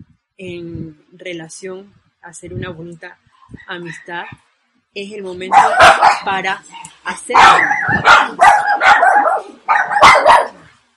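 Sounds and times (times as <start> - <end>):
speech: 0.4 - 10.2
dogs barking: 5.5 - 6.4, 7.3 - 10.8.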